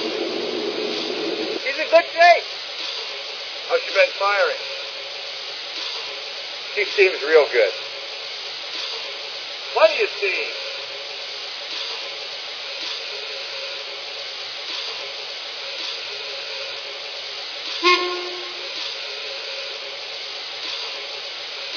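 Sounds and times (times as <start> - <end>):
heavy train locomotive working hard with roar and hiss: 0.0 - 21.7
speech: 4.0 - 4.8, 6.8 - 7.8, 9.8 - 10.6
brief sharp tonal burst: 17.8 - 18.8.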